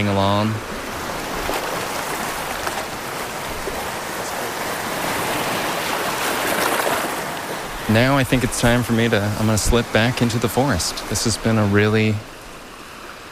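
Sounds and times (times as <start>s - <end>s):
speech: 0.0s - 0.7s, 7.9s - 12.3s
gentle lake waves breaking with white foam on a Lake Ontario beach: 0.0s - 13.2s.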